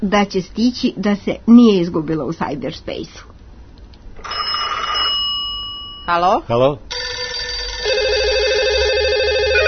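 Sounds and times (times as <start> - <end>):
speech: 0.0 - 3.3, 6.1 - 6.9
outgoing telephone call ringing tone: 4.2 - 5.3, 6.9 - 9.6.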